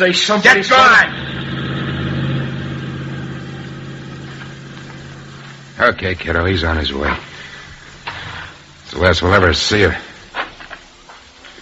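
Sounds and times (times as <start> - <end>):
speech: 0.0 - 1.5, 5.8 - 7.4, 8.9 - 10.1
motor vehicle engine started and running: 0.8 - 8.8.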